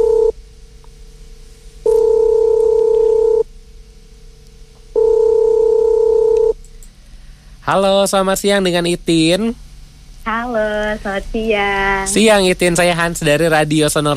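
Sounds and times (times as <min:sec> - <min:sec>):
telephone ringing tone heard down the line: 0:00.0 - 0:00.3, 0:01.9 - 0:03.4, 0:05.0 - 0:06.5
speech: 0:07.7 - 0:09.6, 0:10.2 - 0:14.1.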